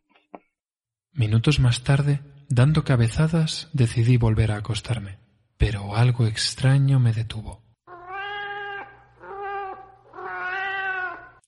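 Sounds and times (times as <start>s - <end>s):
speech: 1.2s - 7.6s
cat meowing in a dark alley: 7.9s - 11.4s.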